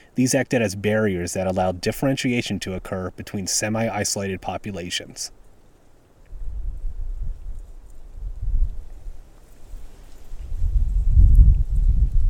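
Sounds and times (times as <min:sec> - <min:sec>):
speech: 0:00.2 - 0:05.4
strong wind buffeting the microphone: 0:06.3 - 0:12.2.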